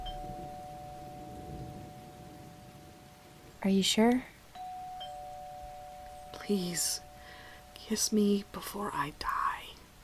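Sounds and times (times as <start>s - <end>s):
doorbell ringing with a sustained chime tone: 0.0s - 3.1s, 4.6s - 7.9s
speech: 3.6s - 4.3s, 6.5s - 7.1s, 7.9s - 9.4s.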